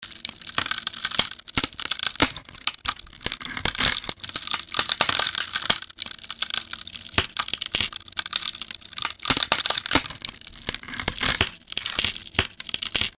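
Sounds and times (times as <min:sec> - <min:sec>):
wood crackling: 0:00.0 - 0:13.1.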